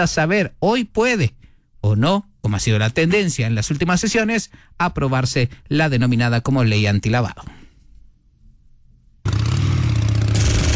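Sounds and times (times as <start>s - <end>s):
speech: 0.0s - 7.6s
motorcycle engine revving: 9.3s - 10.7s.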